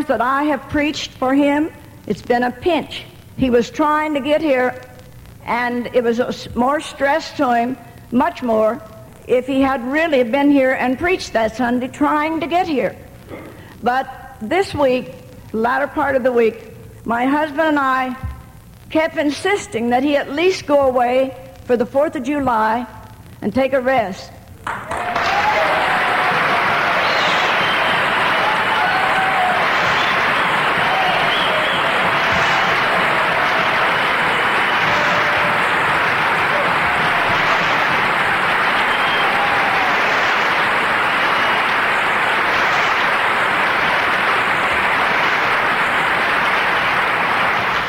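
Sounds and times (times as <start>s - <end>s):
speech: 0.0s - 4.9s, 5.5s - 18.3s, 18.9s - 24.8s
large audience applauding: 24.6s - 47.8s.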